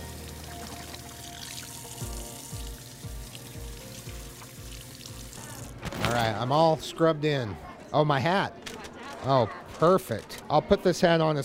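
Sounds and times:
running tap water in a school cafeteria kitchen: 0.0s - 5.7s
speech: 6.1s - 8.6s, 9.2s - 11.4s.

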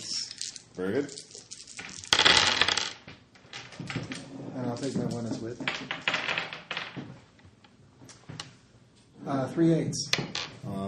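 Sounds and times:
dice clattering onto a hard tabletop: 0.0s - 4.2s, 4.8s - 7.2s, 10.1s - 10.6s
speech: 0.8s - 1.3s, 4.8s - 6.1s, 9.3s - 10.8s.

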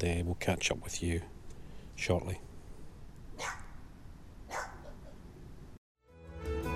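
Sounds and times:
speech: 0.0s - 1.4s, 2.0s - 2.5s
Jack Russell terrier barking: 3.4s - 3.8s, 4.5s - 5.2s.

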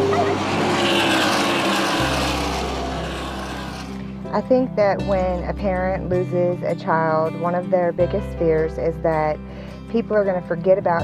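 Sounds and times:
rushing noise: 0.0s - 4.3s
race car engines roaring: 0.0s - 4.6s
speech: 4.4s - 11.0s.

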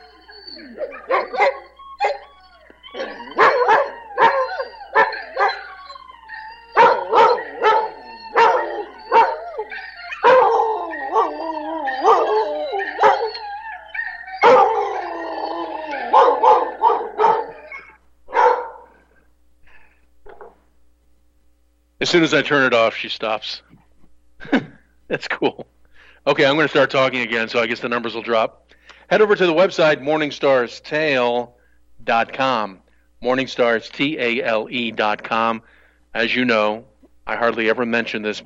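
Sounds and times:
dog howling and barking: 0.0s - 19.0s
speech: 0.8s - 1.6s, 22.1s - 23.7s, 25.1s - 25.6s, 26.3s - 38.4s.

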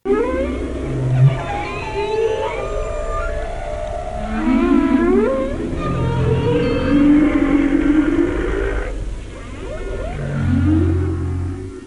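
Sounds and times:
humpback whale song: 0.1s - 11.8s.

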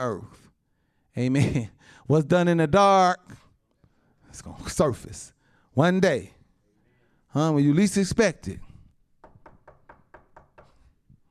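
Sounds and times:
speech: 0.0s - 0.4s, 1.2s - 3.4s, 4.3s - 6.4s, 7.3s - 8.7s
knocking on a door: 9.2s - 10.8s.

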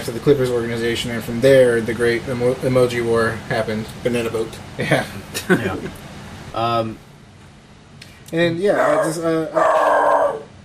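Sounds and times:
speech: 0.0s - 6.0s, 6.6s - 7.1s, 8.3s - 9.8s
dog howling at the door: 8.7s - 10.6s
dog barking at the door: 8.8s - 10.5s.

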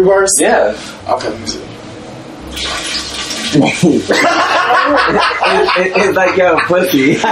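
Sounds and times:
speech: 0.0s - 1.7s, 2.5s - 7.3s
enema water expelled into a toilet bowl: 2.5s - 3.7s
laughter: 3.8s - 7.3s.

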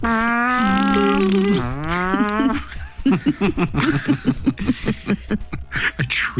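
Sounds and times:
voice imitating a vuvuzela as a fart noise: 0.0s - 2.4s
chuckling laughter: 0.8s - 6.1s
speech: 3.2s - 5.5s, 6.1s - 6.3s.

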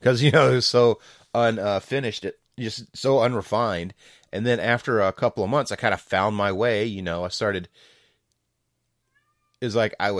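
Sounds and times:
speech: 0.0s - 7.9s, 9.6s - 10.1s
cat meowing at a door: 9.0s - 9.6s.

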